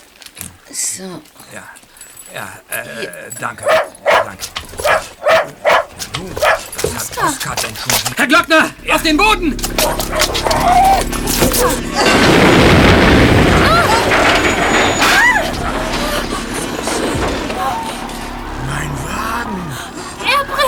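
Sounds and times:
scattered voices calling out: 0.5s - 20.6s
speech: 0.8s - 15.0s
rumbling crackling aftermath of explosion: 3.7s - 20.6s
loud explosion: 8.8s - 20.6s.

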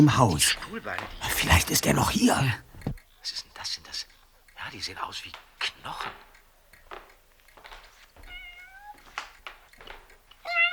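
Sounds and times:
speech: 0.0s - 6.3s
small cat meowing: 8.2s - 9.1s, 10.4s - 10.7s.

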